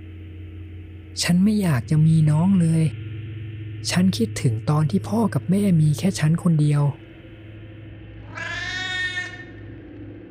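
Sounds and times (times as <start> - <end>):
low steady hum: 0.0 - 10.2
speech: 1.2 - 3.0, 3.8 - 7.0
cat meowing plaintively: 8.2 - 9.6.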